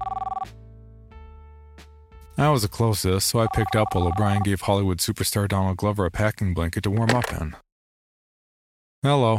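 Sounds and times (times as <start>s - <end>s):
store telephone ringing: 0.0s - 0.5s, 3.4s - 4.5s
speech: 2.4s - 7.6s, 9.0s - 9.3s.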